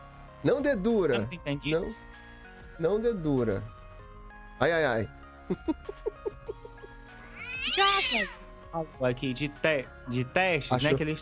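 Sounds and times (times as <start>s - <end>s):
speech: 0.4s - 2.2s, 2.8s - 3.8s, 4.6s - 6.2s, 7.7s - 11.1s
laughter: 5.5s - 7.0s
cat giving short high mews: 7.2s - 8.4s.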